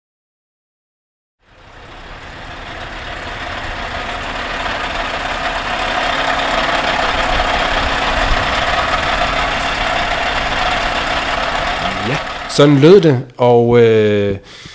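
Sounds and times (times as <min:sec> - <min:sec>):
Scania V8 730 truck engine running: 0:01.4 - 0:13.2
speech: 0:12.6 - 0:14.7.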